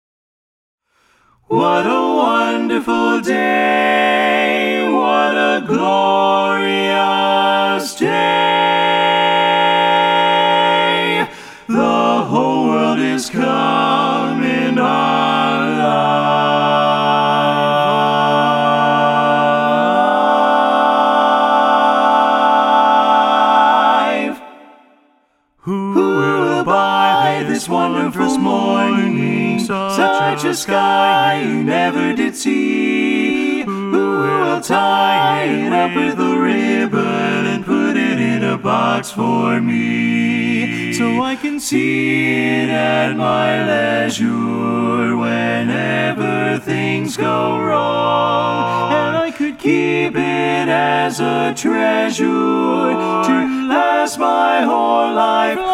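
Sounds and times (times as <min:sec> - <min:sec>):
SATB choir full mix singing: 0:01.4 - 0:55.7.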